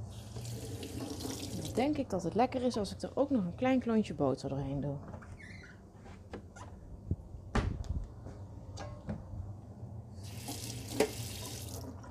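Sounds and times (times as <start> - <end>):
running water from a kitchen tap: 0.1 - 2.0, 10.2 - 12.0
speech: 1.8 - 5.2.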